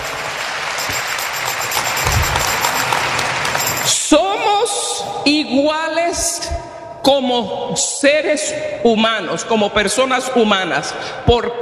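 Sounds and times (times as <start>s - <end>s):
large group of people applauding: 0.0s - 4.2s
speech: 5.0s - 11.6s.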